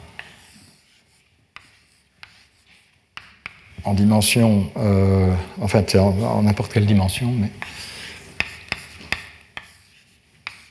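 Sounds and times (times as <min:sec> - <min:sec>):
equations written on a board with scratchy rubbing: 0:00.0 - 0:03.8, 0:07.5 - 0:10.7
writing tool tapping a board surface: 0:03.1 - 0:03.7, 0:08.4 - 0:09.8, 0:10.4 - 0:10.7
speech: 0:03.8 - 0:07.8.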